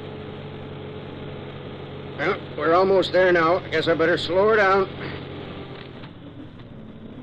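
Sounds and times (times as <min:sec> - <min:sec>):
heavy truck engine hauling 10 tons droning: 0:00.0 - 0:07.2
speech: 0:02.2 - 0:05.2.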